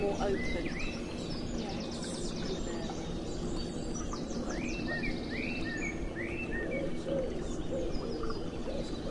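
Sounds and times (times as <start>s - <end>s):
speech: 0.0s - 1.0s
smaller birds chirping and trilling: 0.0s - 9.1s
steady outdoor ambient noise: 0.0s - 9.1s
pigeon cooing: 6.6s - 9.1s.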